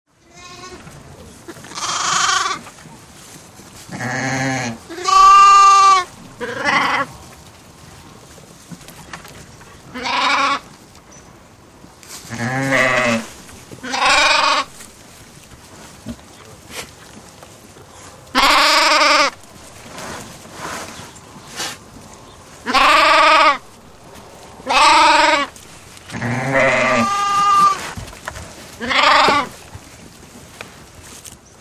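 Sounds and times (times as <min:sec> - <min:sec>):
group of sheep bleating: 0:00.2 - 0:00.9, 0:01.5 - 0:02.6, 0:03.9 - 0:07.1, 0:09.9 - 0:10.6, 0:12.3 - 0:14.8, 0:18.3 - 0:19.5, 0:22.6 - 0:23.7, 0:24.6 - 0:27.9, 0:28.8 - 0:29.6.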